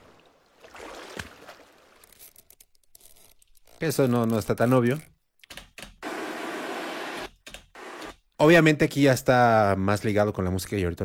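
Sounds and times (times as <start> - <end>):
boat moving through the sea off a beach: 0.0 - 2.0
speech: 3.8 - 5.1, 8.4 - 11.0.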